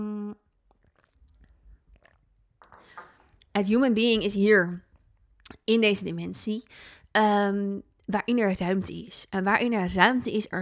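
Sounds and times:
person sipping water: 0.3s - 3.5s
breathy swallow: 0.7s - 3.4s
speech: 3.6s - 4.9s, 5.5s - 10.6s.

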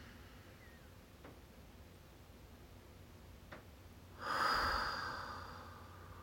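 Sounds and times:
deep breath in during a guided breathing exercise: 4.2s - 6.2s.

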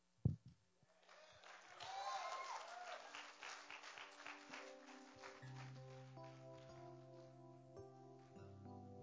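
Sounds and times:
audience applause for a female speaker: 1.0s - 6.9s
keyboard or organ chords: 4.4s - 9.0s.

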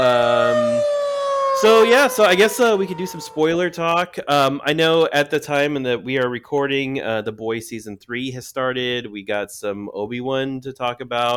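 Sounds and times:
electronic siren tone: 0.0s - 3.9s
speech: 1.6s - 11.3s.

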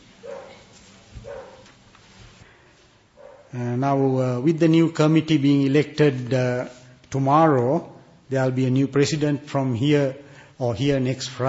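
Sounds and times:
dogs barking outside: 0.2s - 1.7s, 3.2s - 3.5s
speech: 3.5s - 11.4s.

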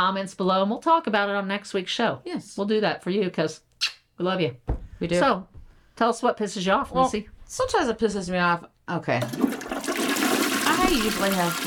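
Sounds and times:
speech: 0.0s - 9.6s, 10.9s - 11.6s
toilet flushing: 9.1s - 11.6s.

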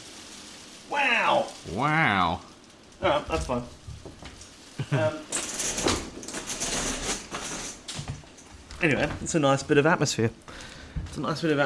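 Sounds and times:
spring hail pattering on a window: 0.0s - 11.6s
person exclaiming: 0.9s - 3.7s, 4.8s - 5.3s
speech: 0.9s - 3.8s, 4.9s - 5.4s, 8.8s - 11.6s.

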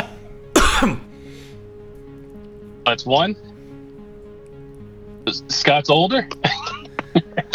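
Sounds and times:
quiet noise: 0.0s - 7.5s
single sharp cough given as a signal in a guessing game: 0.6s - 1.1s
speech: 0.8s - 1.1s, 2.9s - 3.5s, 5.3s - 6.7s.

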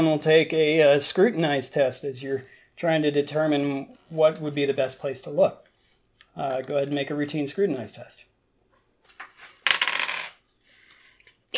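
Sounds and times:
speech: 0.0s - 5.6s, 6.4s - 8.3s
dice rolling on a hard table: 9.0s - 10.5s.

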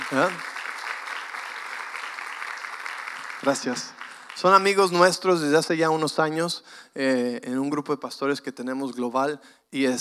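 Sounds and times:
audience applause filling the room: 0.0s - 5.1s
speech: 0.1s - 0.5s, 3.4s - 9.9s.

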